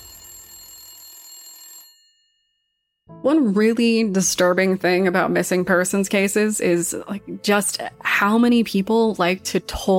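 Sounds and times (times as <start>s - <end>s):
telephone bell ringing with a metallic jangle: 0.0s - 2.6s
speech: 3.2s - 9.9s.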